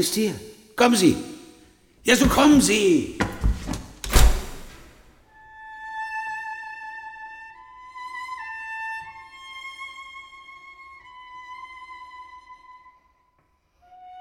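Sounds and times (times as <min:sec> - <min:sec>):
speech: 0:00.0 - 0:01.3, 0:02.0 - 0:03.2
heavy door slamming shut: 0:02.1 - 0:05.2.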